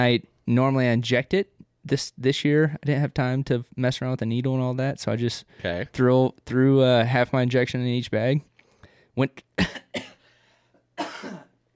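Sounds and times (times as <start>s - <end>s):
speech: 0.0s - 8.5s, 9.2s - 10.1s
smoker coughing: 9.6s - 10.4s, 11.0s - 11.7s.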